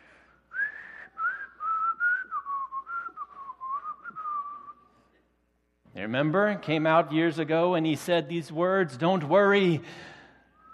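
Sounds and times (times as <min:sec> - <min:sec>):
person whistling a bright pop melody: 0:00.5 - 0:04.9
speech: 0:06.0 - 0:10.1.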